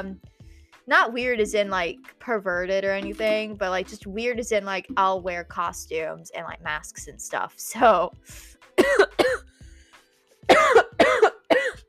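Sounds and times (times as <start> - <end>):
speech: 0.0 - 9.5
person coughing with a tickle in the throat: 8.8 - 9.4, 10.5 - 11.8.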